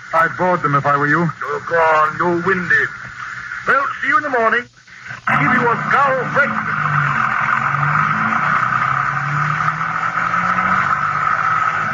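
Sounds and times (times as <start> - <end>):
speech: 0.1 - 6.8
car engine droning while driving off: 5.2 - 11.9.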